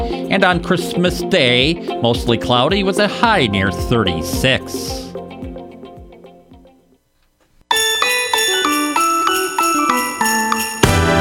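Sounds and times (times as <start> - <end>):
speech: 0.3 - 5.0
sleigh bells jingling: 7.7 - 11.2.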